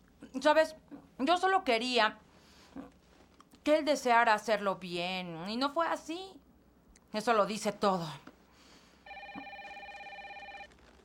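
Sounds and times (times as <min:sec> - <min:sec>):
speech: 0:00.4 - 0:02.2, 0:03.6 - 0:06.4, 0:07.1 - 0:08.3
electronic telephone ringing in a dubbed film scene: 0:09.1 - 0:10.8.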